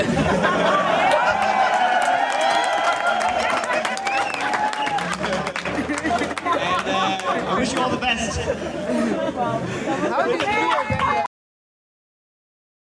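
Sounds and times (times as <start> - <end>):
speech: 0.0 - 0.6, 6.5 - 11.2
laughter: 0.0 - 11.3
large crowd cheering and applauding: 0.4 - 7.9.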